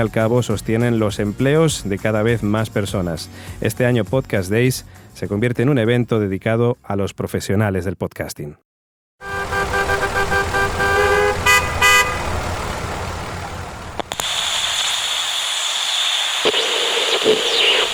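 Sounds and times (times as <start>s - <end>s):
speech: 0.0s - 8.7s
car horn honking: 9.2s - 12.7s
hiss of passing vehicles: 9.3s - 14.2s
busy street traffic engine rumble: 9.3s - 17.9s.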